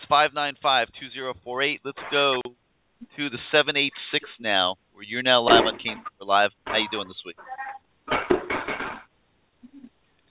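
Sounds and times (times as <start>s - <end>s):
speech: 0.1s - 8.4s
dishes and pans clattering while being washed: 8.1s - 9.0s.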